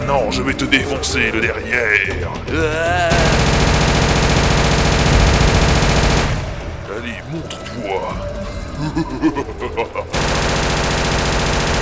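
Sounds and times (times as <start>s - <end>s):
laughter: 0.1s - 3.7s, 6.9s - 10.8s
speech: 0.1s - 3.8s, 8.8s - 10.6s
Gatling machine gun with rotating titanium barrels firing in a video game: 3.1s - 7.1s, 10.1s - 11.7s.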